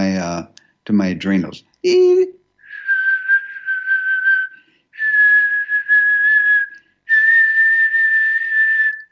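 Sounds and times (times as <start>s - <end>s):
speech: 0.3s - 2.4s
person whistling long steady pure tones: 2.6s - 9.1s.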